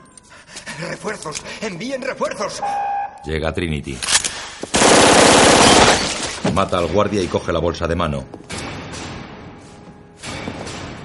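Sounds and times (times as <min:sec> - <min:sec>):
speech: 0:00.8 - 0:05.4, 0:06.6 - 0:08.4
automatic gunfire burst in a film shootout in a columned lobby: 0:04.7 - 0:06.3.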